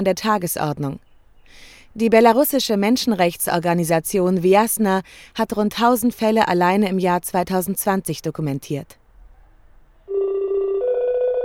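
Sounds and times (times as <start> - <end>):
speech: 0.0 - 9.0
telephone ringtone for an incoming video call: 10.1 - 11.4.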